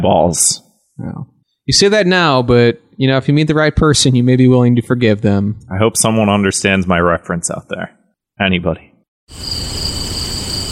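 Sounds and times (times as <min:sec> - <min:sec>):
speech: 0:00.0 - 0:09.9
chorus of crickets chirping: 0:09.3 - 0:10.7.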